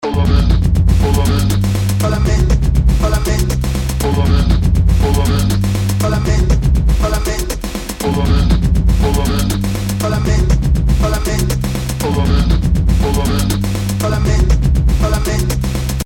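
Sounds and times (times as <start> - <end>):
warbled beats: 0.2 - 16.0.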